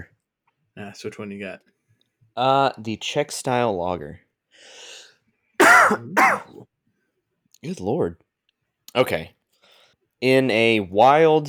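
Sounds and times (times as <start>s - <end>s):
speech: 0.8s - 1.7s, 2.4s - 4.8s, 5.9s - 6.7s, 7.6s - 8.2s, 9.0s - 9.4s, 10.2s - 11.4s
throat clearing: 5.6s - 6.6s.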